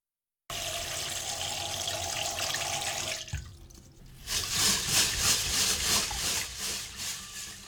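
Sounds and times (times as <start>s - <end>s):
water running from a tap into a bowl for rinsing rice in a sieve: 0.5s - 6.5s.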